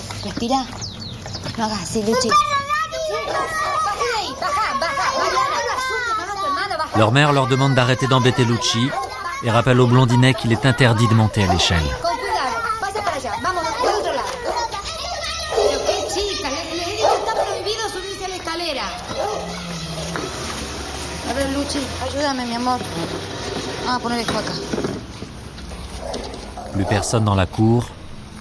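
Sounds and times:
speech: 0.2s - 0.8s, 1.5s - 12.1s, 21.7s - 23.2s, 23.9s - 24.9s, 26.8s - 28.0s
children's voices and chatter in a playground: 1.7s - 25.0s
dog barking: 3.1s - 3.8s, 8.9s - 9.2s, 10.4s - 12.0s, 13.8s - 14.8s, 15.4s - 17.8s, 19.1s - 19.6s, 26.0s - 27.3s.

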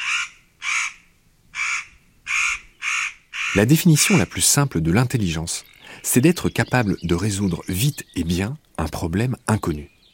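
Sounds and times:
crow cawing: 0.0s - 4.3s
speech: 3.5s - 10.0s.

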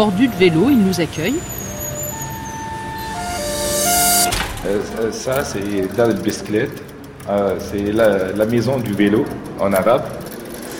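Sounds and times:
speech: 0.0s - 1.6s, 4.6s - 10.2s
sustained whining tone: 0.0s - 6.8s
rush-hour street traffic rumbling in a busy neighbourhood of Tunis: 0.0s - 10.7s.

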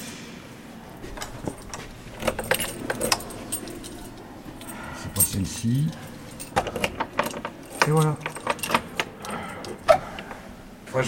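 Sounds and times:
metal Vachette keys jangling on a ring on a grandstand: 1.1s - 9.9s
speech: 5.4s - 6.1s, 7.9s - 8.3s.

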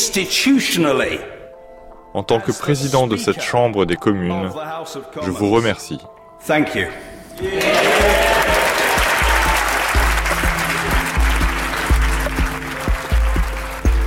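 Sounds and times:
speech: 0.0s - 1.3s, 2.1s - 8.2s
standing ovation applause in the House of Commons chamber after a speech: 7.4s - 14.0s.

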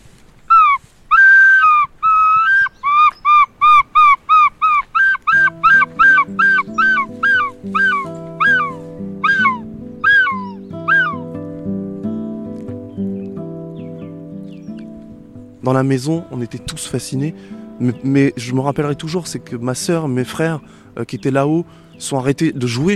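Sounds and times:
man's voice imitating a gull's squawking call: 0.5s - 11.3s
music: 5.3s - 22.9s
speech: 15.7s - 22.9s.

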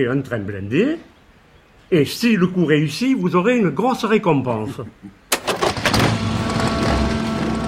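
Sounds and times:
speech: 0.0s - 1.1s, 1.9s - 5.2s
car and motorcycle engines rumbling as vehicles arrive: 5.4s - 7.6s.

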